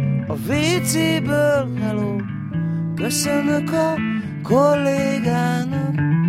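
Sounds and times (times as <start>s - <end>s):
sad song with male vocals and full accompaniment: 0.2s - 6.1s
speech: 0.3s - 2.4s, 3.0s - 6.1s.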